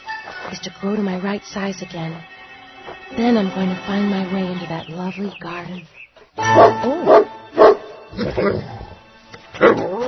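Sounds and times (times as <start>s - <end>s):
speech: 0.6s - 2.3s, 3.1s - 8.8s, 9.6s - 10.0s
puppy barking in high-pitched yaps: 6.5s - 7.9s.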